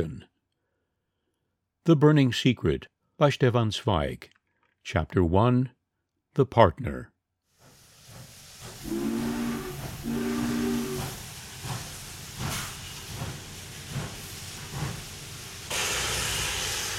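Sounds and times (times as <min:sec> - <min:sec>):
speech: 0:00.0 - 0:00.3, 0:01.8 - 0:05.8, 0:06.4 - 0:07.1
steam train chuffing with rhythmic bursts of steam: 0:07.6 - 0:16.9
steam train long whistle blasts: 0:08.8 - 0:11.2.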